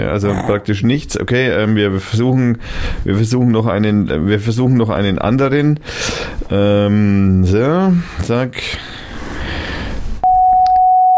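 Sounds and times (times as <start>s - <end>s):
speech: 0.0s - 8.9s
pure sine-wave test tone at a mid-range pitch: 10.2s - 11.1s.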